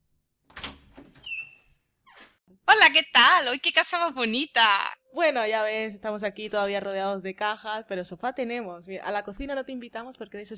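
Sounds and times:
front door hinges creaking: 0.5 - 2.4
speech: 2.9 - 10.5.

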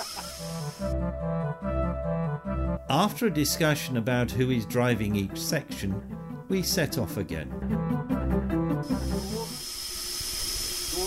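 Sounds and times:
steam locomotive steam hiss as steam is admitted to set it moving: 0.0 - 0.9, 8.9 - 11.0
speech: 0.4 - 9.6.

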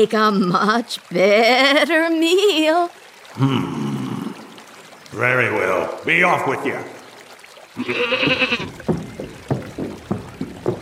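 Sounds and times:
speech: 0.0 - 4.0, 5.1 - 7.0, 7.8 - 8.9
billy goat bleating: 7.8 - 8.8
hollow knocking hoof-like steps: 7.8 - 10.8.

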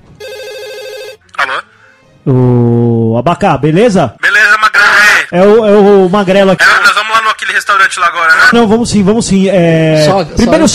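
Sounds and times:
telephone ringing with a warbling electronic trill: 0.2 - 1.5
speech: 2.3 - 4.2, 5.3 - 10.7.

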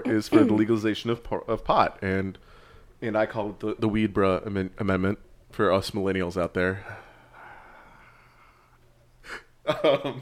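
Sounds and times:
speech: 0.1 - 7.0, 9.2 - 10.1
breathy airy exhale close to the microphone: 2.4 - 2.9, 6.8 - 9.5.

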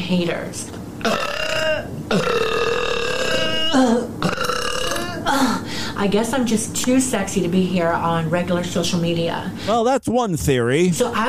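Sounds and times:
speech: 0.1 - 2.4, 5.3 - 11.2
burping: 1.0 - 5.2.

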